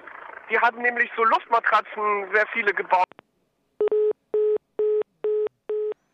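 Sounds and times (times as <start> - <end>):
speech: 0.5 - 3.0
telephone busy tone after a dropped call: 3.8 - 6.1.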